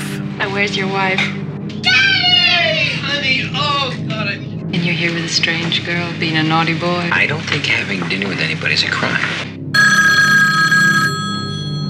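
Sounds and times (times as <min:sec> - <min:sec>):
speech: 0:00.5 - 0:02.1, 0:03.1 - 0:09.9
telephone bell ringing in an apartment: 0:09.8 - 0:11.8.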